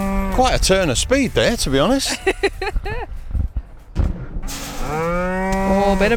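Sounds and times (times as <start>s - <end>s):
farm herd of cows mooing: 0.0s - 0.8s, 4.5s - 6.1s
speech: 0.4s - 3.0s, 4.9s - 6.1s
laughter: 1.9s - 3.2s.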